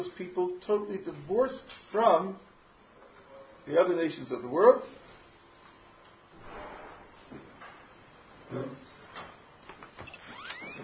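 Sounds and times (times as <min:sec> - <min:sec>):
speech: 0:00.0 - 0:02.5, 0:03.7 - 0:05.0, 0:08.5 - 0:08.8
door pushed closed with soft scraping: 0:06.4 - 0:07.1, 0:10.0 - 0:10.8.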